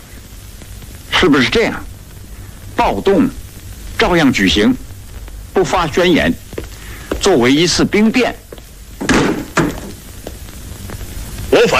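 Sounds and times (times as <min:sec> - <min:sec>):
speech: 0:01.2 - 0:01.9, 0:02.8 - 0:03.4, 0:04.0 - 0:04.8, 0:05.6 - 0:06.4, 0:07.2 - 0:08.4
door being pushed open into a meeting room: 0:09.0 - 0:10.0
faint knocks and rattles: 0:09.0 - 0:10.0
heavy thuds of door being pushed open: 0:09.0 - 0:10.4.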